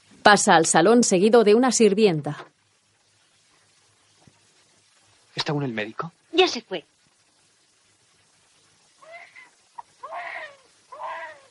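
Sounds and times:
speech: 0:00.2 - 0:02.5, 0:06.5 - 0:06.9
newborn baby crying in wavering wails: 0:09.0 - 0:11.4.

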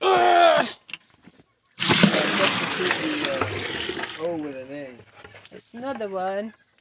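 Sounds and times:
water poured into a bucket: 0:01.8 - 0:04.9
speech: 0:06.0 - 0:06.6.

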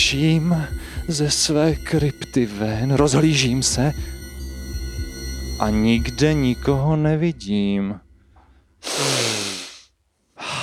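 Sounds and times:
speech: 0:00.1 - 0:04.2, 0:05.6 - 0:08.0
deep loud inhale through the nose: 0:08.6 - 0:10.6
sniffing: 0:08.8 - 0:09.9.

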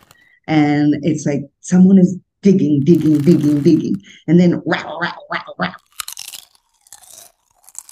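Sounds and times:
speech: 0:00.5 - 0:05.8
person crunching chips from a big bag in a maloka: 0:02.9 - 0:03.9, 0:05.8 - 0:07.8.

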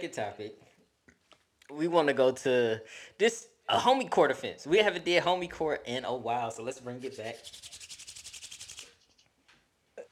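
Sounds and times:
speech: 0:00.0 - 0:00.7, 0:01.7 - 0:07.8
dry hands rubbing together: 0:07.0 - 0:09.4.

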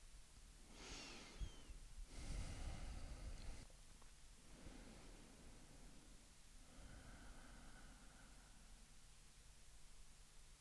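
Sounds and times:
slow deep breathing with sharp nasal inhales and soft airy exhales: 0:00.7 - 0:03.7, 0:04.4 - 0:08.9.

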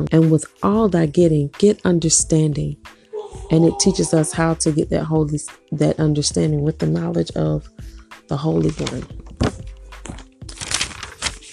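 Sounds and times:
speech: 0:00.0 - 0:10.2
paper pages of notes rustling and crinkling: 0:08.4 - 0:11.5.

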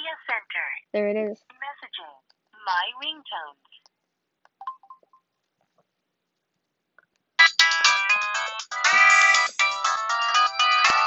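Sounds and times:
speech: 0:00.9 - 0:01.6, 0:02.6 - 0:03.7
bright electronic mobile phone ringtone melody: 0:07.4 - 0:11.0.

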